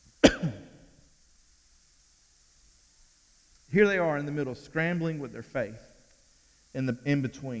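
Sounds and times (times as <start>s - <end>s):
single abrupt cough or throat clearing: 0.2s - 0.8s
speech: 3.7s - 5.9s, 6.8s - 7.5s.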